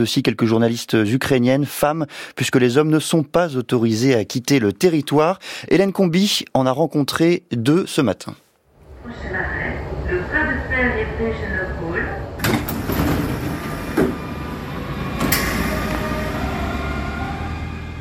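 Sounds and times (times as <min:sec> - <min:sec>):
speech: 0:00.0 - 0:08.4
steady mechanical rumble of commuter train: 0:08.8 - 0:17.9
tonal electric whine of RER line D commuter train: 0:08.8 - 0:17.9
RER commuter train door clunks at station: 0:12.4 - 0:16.4.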